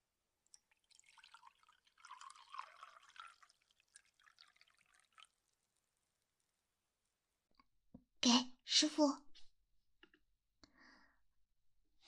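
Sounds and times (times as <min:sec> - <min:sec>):
water pouring into a cup: 0:00.5 - 0:06.1
speech: 0:08.2 - 0:09.2.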